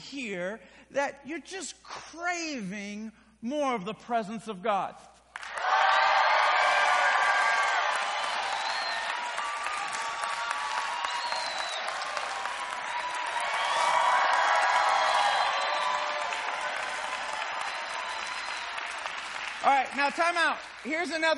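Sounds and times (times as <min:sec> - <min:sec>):
speech: 0:00.1 - 0:05.1, 0:19.9 - 0:21.3
large crowd clapping: 0:05.3 - 0:21.3
large crowd cheering and whooping: 0:05.4 - 0:19.7.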